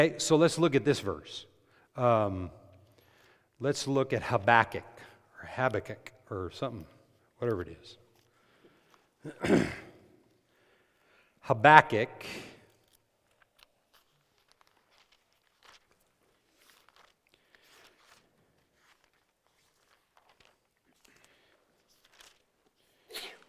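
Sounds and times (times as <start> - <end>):
speech: 0.0 - 2.6, 3.6 - 8.0, 9.2 - 9.8, 11.5 - 12.5
person sneezing: 9.2 - 10.2, 23.0 - 23.4
crunchy rustling: 12.7 - 23.4.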